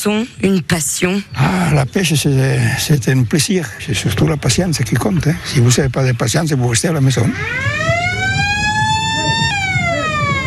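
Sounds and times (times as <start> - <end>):
speech: 0.0 - 8.0
alarm siren signaling the end of a fishing contest: 7.1 - 10.4.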